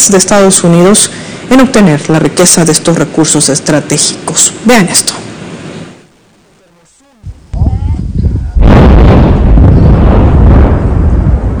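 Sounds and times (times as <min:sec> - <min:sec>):
speech: 0:00.0 - 0:05.3
deep thunderous mining blast detonation: 0:07.3 - 0:11.5
sustained roaring rumble: 0:07.3 - 0:11.5.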